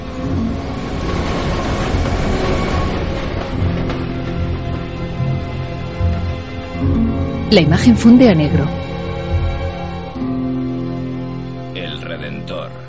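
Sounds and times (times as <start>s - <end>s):
subway train wheels clickety-clack: 0.0s - 6.9s
subway train rolling through a metro: 0.0s - 12.8s
speech: 7.5s - 8.9s.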